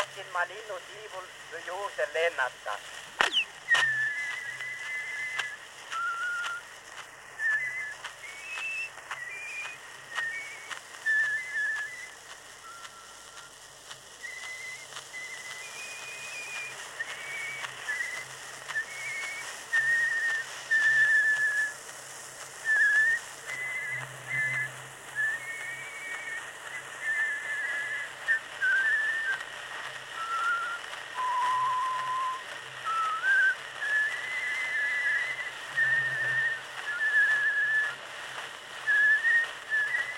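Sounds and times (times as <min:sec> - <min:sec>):
speech: 0:00.2 - 0:04.0
man whistling a folk song in two voices at once: 0:03.2 - 0:06.7, 0:07.3 - 0:13.5, 0:14.2 - 0:21.9, 0:22.6 - 0:29.5, 0:30.1 - 0:38.0, 0:38.8 - 0:40.1.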